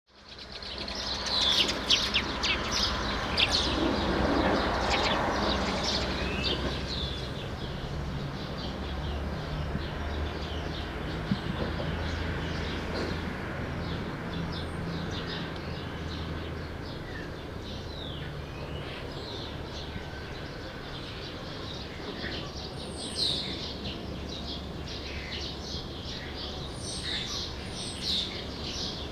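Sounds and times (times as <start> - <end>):
true sparrows: 0.2 - 29.1.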